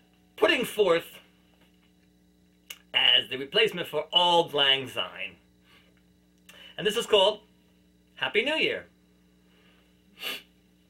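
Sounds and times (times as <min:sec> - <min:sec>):
quiet hum: 0:00.0 - 0:10.8
speech: 0:00.6 - 0:01.2, 0:03.2 - 0:05.4, 0:06.8 - 0:07.5, 0:08.2 - 0:08.9
sniff: 0:10.2 - 0:10.5.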